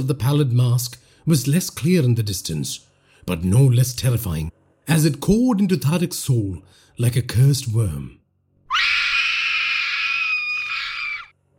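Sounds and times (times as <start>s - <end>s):
speech: 0.0s - 8.2s
woman screaming: 8.7s - 11.3s.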